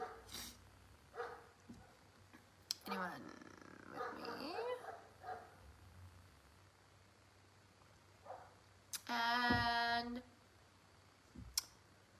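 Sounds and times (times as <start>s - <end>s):
dogs barking: 0.0s - 0.3s, 1.1s - 2.0s, 3.9s - 5.6s
low steady hum: 0.0s - 12.1s
speech: 2.9s - 3.5s.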